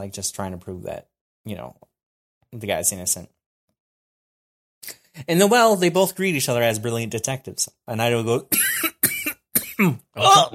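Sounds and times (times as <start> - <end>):
speech: 0.0 - 1.9, 2.5 - 3.4, 4.8 - 8.9, 9.8 - 10.5
person imitating a cough: 8.5 - 10.5.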